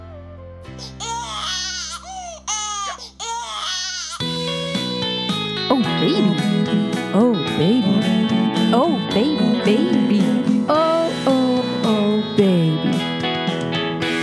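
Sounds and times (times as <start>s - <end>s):
baby crying: 0.8s - 4.4s
music with sustained tones: 4.2s - 14.2s.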